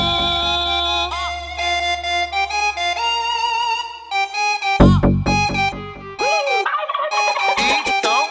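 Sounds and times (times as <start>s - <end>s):
steady harmonic tone: 0.1s - 6.6s
turkey gobbling: 6.2s - 8.1s.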